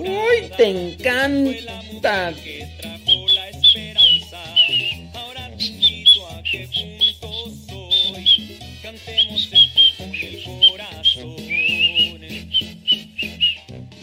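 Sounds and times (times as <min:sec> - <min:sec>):
speech: 0:00.4 - 0:02.9
person whistling a lively quick tune: 0:03.0 - 0:13.7.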